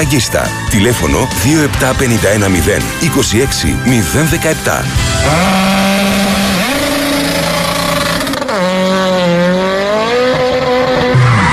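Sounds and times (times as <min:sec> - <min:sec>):
speech: 0:00.0 - 0:05.8
car tyre blowing out and skidding on a road: 0:05.1 - 0:11.5.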